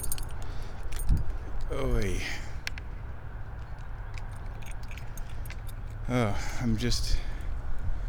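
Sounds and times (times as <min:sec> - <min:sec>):
keys jangling while searching: 0:00.0 - 0:01.3, 0:03.6 - 0:06.0
outdoor noise: 0:00.0 - 0:08.0
speech: 0:01.7 - 0:02.5, 0:06.1 - 0:07.3.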